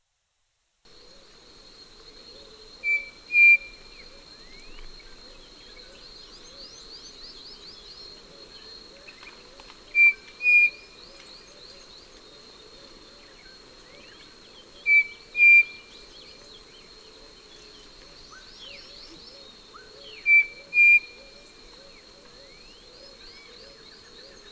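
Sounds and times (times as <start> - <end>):
Tapera naevia calling: 2.4 - 4.7, 9.0 - 11.9, 14.8 - 16.4, 18.2 - 24.5.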